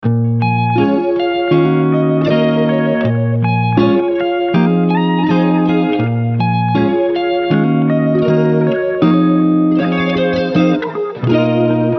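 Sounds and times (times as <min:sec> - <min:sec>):
music at 160 BPM in B-flat minor: 0:00.0 - 0:11.9.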